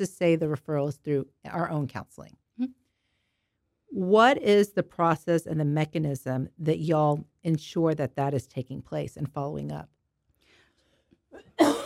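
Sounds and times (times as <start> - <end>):
speech: 0.0 - 2.8, 3.9 - 10.0
loud harsh cough: 11.4 - 11.8.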